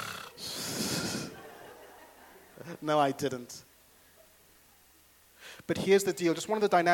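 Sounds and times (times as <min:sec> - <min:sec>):
person imitating a drawn-out snore: 0:00.0 - 0:01.3
laughter: 0:00.4 - 0:02.9
speech: 0:02.6 - 0:03.7, 0:05.7 - 0:06.9.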